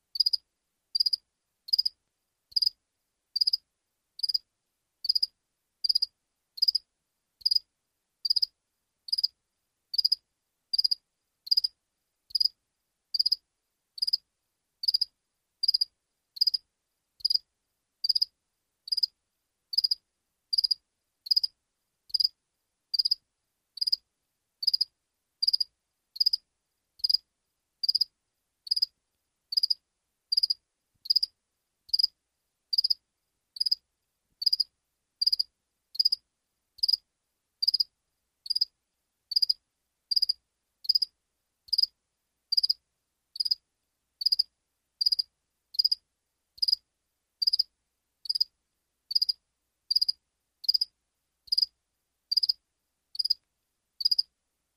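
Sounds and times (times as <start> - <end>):
single cricket chirp: 0.2 - 2.8, 3.4 - 3.6, 4.2 - 4.4, 5.0 - 8.5, 9.1 - 13.4, 14.0 - 14.2, 14.8 - 16.6, 17.2 - 17.4, 18.0 - 18.3, 18.9 - 19.1, 19.7 - 23.2, 23.8 - 24.0, 24.6 - 26.4, 27.0 - 27.2, 27.8 - 28.1, 28.7 - 28.9, 29.5 - 31.3, 31.9 - 33.0, 33.6 - 33.8, 34.4 - 36.2, 36.8 - 37.0, 37.6 - 38.7, 39.3 - 41.1, 41.7 - 41.9, 42.5 - 42.8, 43.4 - 43.6, 44.2 - 46.0, 46.6 - 46.8, 47.4 - 48.5, 49.1 - 50.9, 51.5 - 52.6, 53.2 - 53.4, 54.0 - 54.3.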